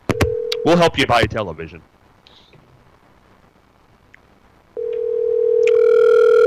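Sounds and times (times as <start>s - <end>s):
telephone dial tone: 0.1s - 0.7s, 4.8s - 6.4s
speech: 0.7s - 1.9s.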